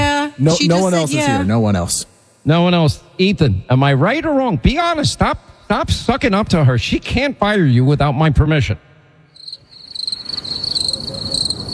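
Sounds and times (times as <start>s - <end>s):
speech: 0.4s - 8.9s
crickets chirping: 9.3s - 11.7s.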